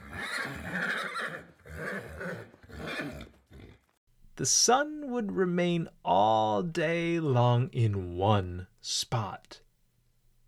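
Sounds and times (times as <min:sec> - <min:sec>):
horse neighing: 0:00.0 - 0:03.8
speech: 0:04.4 - 0:09.6.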